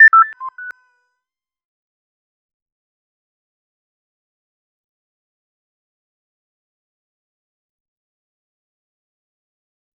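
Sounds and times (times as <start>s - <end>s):
multiple notification sounds: 0.0s - 0.7s.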